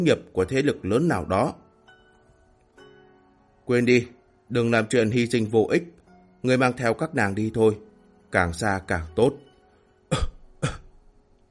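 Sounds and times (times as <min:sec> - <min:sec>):
speech: 0:00.0 - 0:01.6, 0:03.7 - 0:09.4
wounded man coughing up blood: 0:10.1 - 0:10.9.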